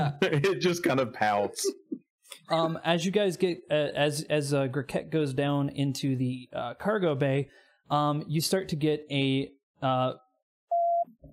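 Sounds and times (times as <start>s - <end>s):
speech: 0.1s - 1.8s, 2.5s - 10.2s
starship communications beep during a role-playing game: 10.7s - 11.3s.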